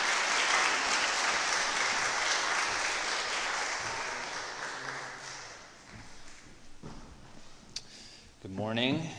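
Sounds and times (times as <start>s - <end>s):
audience clapping indoors in welcome: 0.0s - 6.0s
speech: 8.5s - 9.1s.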